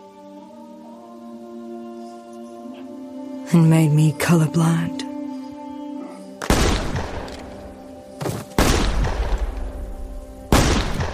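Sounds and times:
speech: 3.5 - 5.1
loud sharp gunshots: 6.4 - 7.4, 8.2 - 9.6, 10.5 - 11.1.

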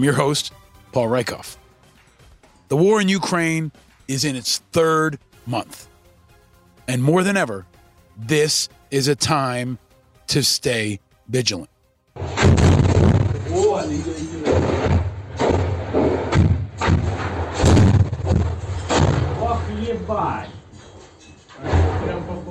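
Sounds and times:
speech: 0.0 - 1.6, 2.7 - 5.9, 6.9 - 11.7, 13.7 - 14.3
deep booms and cracking blasts of artillery: 12.2 - 13.8, 14.4 - 19.7
heavy artillery shelling at a steel plant during war: 12.2 - 20.1, 21.5 - 22.3.

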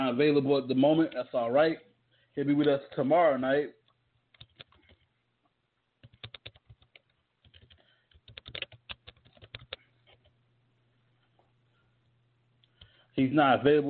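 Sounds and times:
faint steady low hum: 0.0 - 13.8
speech: 0.1 - 3.8, 13.2 - 13.8
typing on a computer keyboard: 4.3 - 5.1, 6.0 - 10.3.

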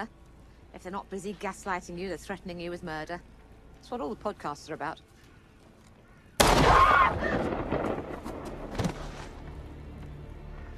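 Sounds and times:
speech: 0.0 - 5.1, 7.1 - 7.6
gunshot in a sci-fi TV drama scene: 6.4 - 9.1.

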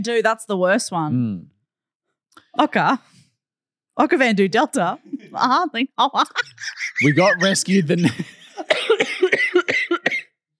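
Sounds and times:
speech: 0.0 - 1.6, 2.6 - 3.1, 4.0 - 8.3
laughter: 6.2 - 9.0
person coughing: 7.0 - 10.4.

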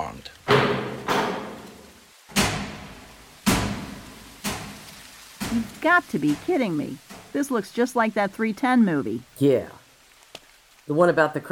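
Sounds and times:
heavy vault door opening with mechanical clunks: 0.5 - 1.7
speech: 5.5 - 9.8, 10.9 - 11.4.

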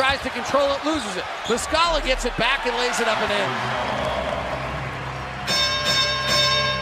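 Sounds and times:
speech: 0.2 - 4.2
bright bell rung during a basketball game: 5.5 - 6.8.

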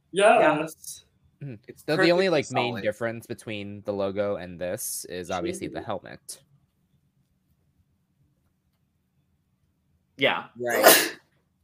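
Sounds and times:
speech: 0.1 - 6.5, 10.2 - 11.2
loud sneeze with a voiced build-up: 10.7 - 11.2.

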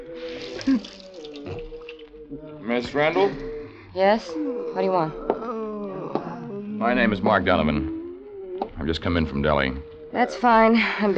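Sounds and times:
water splashing in a basin: 0.1 - 2.2
speech: 0.7 - 1.6, 2.3 - 5.2, 6.8 - 8.0, 8.6 - 11.1.

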